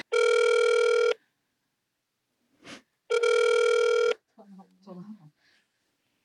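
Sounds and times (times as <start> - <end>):
long electronic ringback tones of a phone call: 0.0 - 1.2, 3.1 - 4.2
person answering a phone call: 0.0 - 1.2, 3.1 - 4.2.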